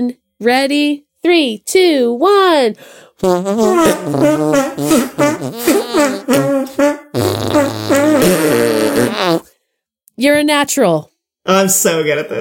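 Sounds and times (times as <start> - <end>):
speech: 0.0 - 9.4, 10.2 - 12.3
arm farts made with hand and armpit: 3.2 - 9.5.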